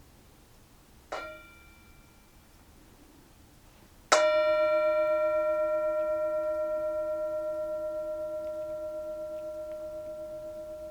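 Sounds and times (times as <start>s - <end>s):
meditation bell ringing: 1.2s - 2.5s, 4.1s - 10.8s.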